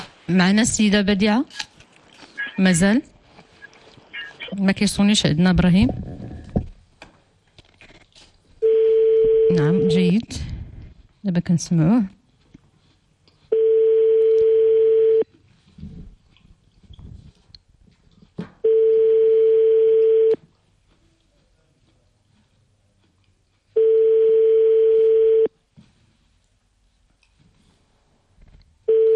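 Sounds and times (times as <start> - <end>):
speech: 0.3 - 1.7, 2.6 - 3.1, 4.5 - 6.1, 9.5 - 10.5, 11.2 - 12.2
telephone call tones while placing a call: 8.6 - 10.2, 13.5 - 15.2, 18.6 - 20.4, 23.8 - 25.5, 28.9 - 29.1.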